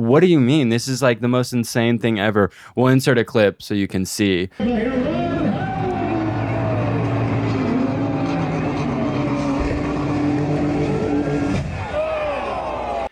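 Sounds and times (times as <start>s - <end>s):
speech: 0.0s - 5.4s
crowd murmuring at a car launch event: 4.6s - 11.6s
car engine roaring as cars are driven off a mountain cliff: 4.6s - 12.3s.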